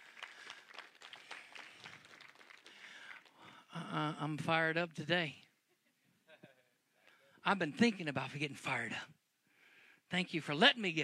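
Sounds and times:
audience clapping: 0.0s - 3.7s, 7.6s - 8.2s
speech: 4.0s - 5.4s, 7.5s - 9.1s, 10.1s - 11.0s.

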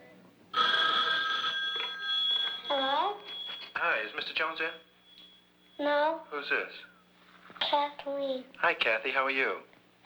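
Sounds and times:
telephone bell ringing: 0.5s - 6.1s
speech: 5.8s - 6.9s, 7.7s - 9.7s.

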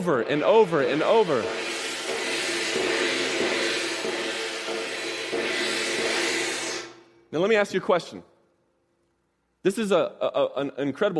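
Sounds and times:
speech: 0.0s - 1.7s, 7.3s - 8.3s, 9.6s - 11.1s
gong struck repeatedly with a loud dense metallic wash: 0.0s - 7.0s.

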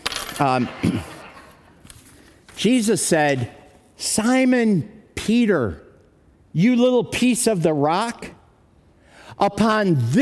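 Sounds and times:
bunch of keys jingling: 0.0s - 0.6s
speech: 0.4s - 1.1s, 2.6s - 5.8s, 6.6s - 8.4s, 9.3s - 10.2s.

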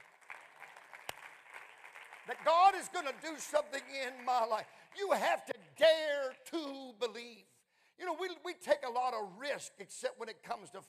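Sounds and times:
audience clapping hands: 0.0s - 5.2s
speech: 2.3s - 10.8s.

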